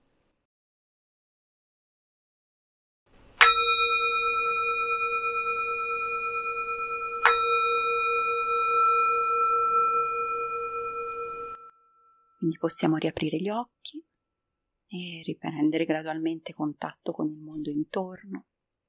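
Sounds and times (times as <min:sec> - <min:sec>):
meditation bell ringing: 0:03.4 - 0:12.5
speech: 0:12.5 - 0:14.1, 0:14.9 - 0:18.5.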